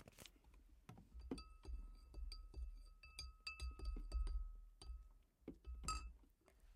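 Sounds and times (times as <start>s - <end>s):
glasses of plum wine clinking in a toast: 1.2s - 5.1s, 5.6s - 6.2s.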